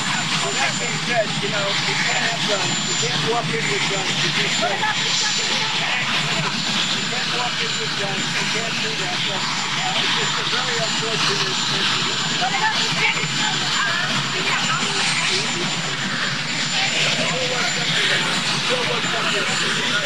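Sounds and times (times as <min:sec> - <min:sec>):
helicopter rotor and engine drone: 0:00.0 - 0:20.0
indistinct voices murmuring: 0:00.0 - 0:20.0
speech: 0:00.6 - 0:06.4, 0:07.4 - 0:15.9, 0:17.6 - 0:20.0.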